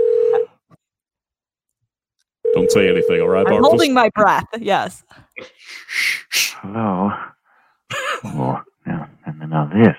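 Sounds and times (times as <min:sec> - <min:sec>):
cell phone call ringing tone: 0:00.0 - 0:00.5, 0:02.4 - 0:03.9
speech: 0:02.6 - 0:07.3, 0:08.2 - 0:08.6, 0:09.5 - 0:09.9.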